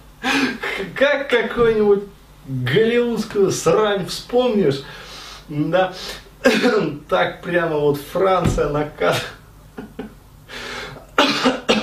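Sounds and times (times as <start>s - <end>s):
man coughing: 0.2s - 1.0s, 6.4s - 6.9s, 11.1s - 11.8s
speech: 0.8s - 9.9s.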